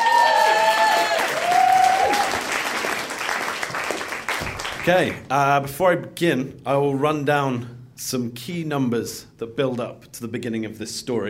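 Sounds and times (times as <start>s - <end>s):
audience crowd applauding: 0.0s - 5.2s
speech: 4.8s - 11.2s.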